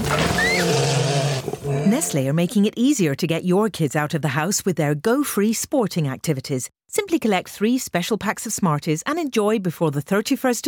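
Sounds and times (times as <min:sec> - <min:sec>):
American black bear giving a low drawn-out moaning growl: 0:00.0 - 0:02.4
whistled rising note: 0:00.3 - 0:00.7
speech: 0:01.9 - 0:10.6.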